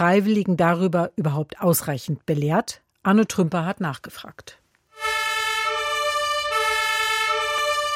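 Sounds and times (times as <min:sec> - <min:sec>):
speech: 0:00.0 - 0:04.6
fire engine two-tone siren while responding: 0:04.9 - 0:07.9.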